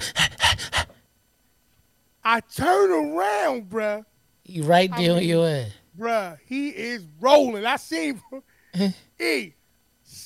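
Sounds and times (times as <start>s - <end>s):
voice imitating heavy panting of a running pit bull: 0.0s - 1.0s
speech: 2.3s - 10.2s.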